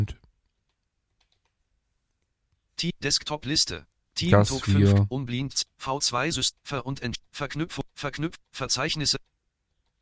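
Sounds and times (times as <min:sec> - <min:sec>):
cursor keys clicking on a computer keyboard: 0:00.6 - 0:01.6
speech: 0:02.8 - 0:09.3.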